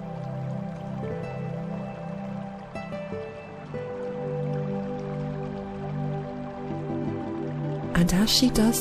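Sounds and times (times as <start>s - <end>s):
steady flowing water: 0.0s - 8.8s
speech: 8.0s - 8.8s.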